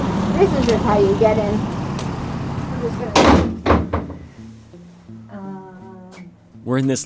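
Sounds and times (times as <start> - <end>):
speech: 0.4 - 1.8, 6.6 - 7.0
heavy metal side door of a jail clunking open: 3.0 - 4.3
loud door latch thud: 3.1 - 4.2.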